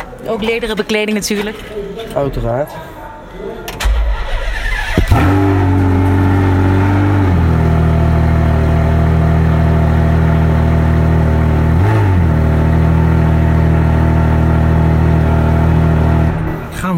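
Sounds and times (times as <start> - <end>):
speech: 0.2 - 2.9
sports car engine starting and idling with throttle blips: 4.4 - 16.6.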